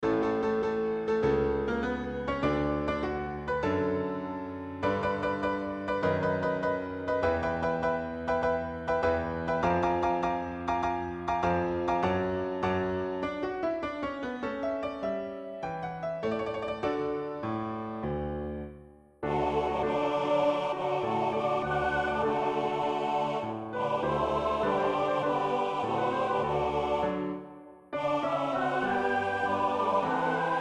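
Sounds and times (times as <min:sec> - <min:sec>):
MIDI piano: 0:00.0 - 0:30.5
MIDI choir: 0:19.2 - 0:30.5.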